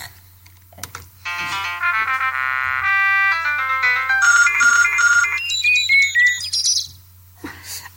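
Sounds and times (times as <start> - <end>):
faint steady hum: 0.0 - 7.9
electronic radio jingle with telephone-style ringing pattern: 1.3 - 6.2.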